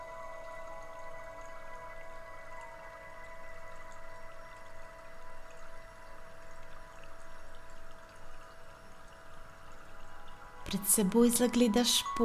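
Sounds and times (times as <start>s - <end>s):
babbling flowing water: 9.0s - 12.2s
speech: 10.7s - 12.2s.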